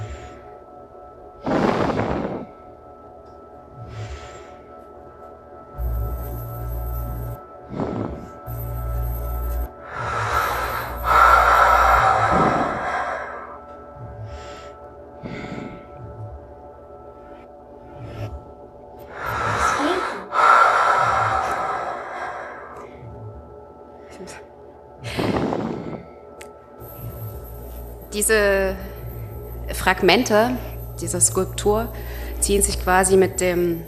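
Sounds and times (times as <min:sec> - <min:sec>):
low steady hum: 0:00.0 - 0:33.8
breathing sounds in an art installation: 0:01.4 - 0:02.7, 0:03.7 - 0:05.0, 0:07.6 - 0:16.3, 0:17.0 - 0:28.1, 0:31.9 - 0:32.5
speech: 0:29.9 - 0:33.8.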